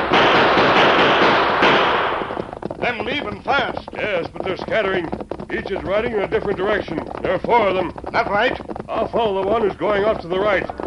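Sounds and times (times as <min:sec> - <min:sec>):
gunshots fired by horsemen at a stagecoach holdup on a trail: 0:00.0 - 0:02.5
speech: 0:03.0 - 0:10.8.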